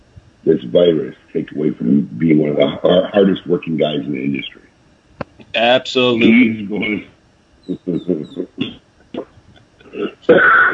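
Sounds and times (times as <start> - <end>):
laughter: 0.5 - 4.4, 5.7 - 7.0, 7.7 - 8.8, 9.8 - 10.7
speech: 0.5 - 4.7, 5.6 - 7.1, 7.7 - 9.3, 10.0 - 10.7
person coughing: 9.9 - 10.7.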